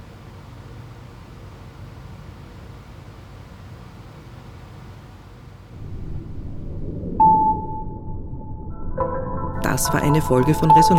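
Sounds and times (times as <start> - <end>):
low rumble of an archive storage vault room tone: 5.8 - 10.9
speech: 9.8 - 10.9.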